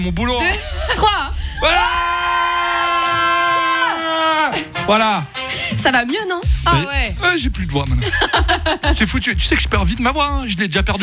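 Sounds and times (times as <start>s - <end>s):
speech: 0.0s - 2.0s, 4.9s - 11.0s
group of people shouting together on cue: 1.6s - 4.6s
laughter: 7.8s - 9.7s.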